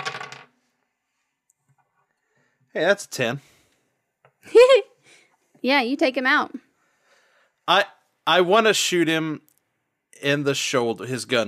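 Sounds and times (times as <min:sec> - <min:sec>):
dice clattering and tumbling across a hard table: 0:00.0 - 0:00.6
speech: 0:02.8 - 0:03.5, 0:05.6 - 0:06.6, 0:07.7 - 0:09.4, 0:10.2 - 0:11.4.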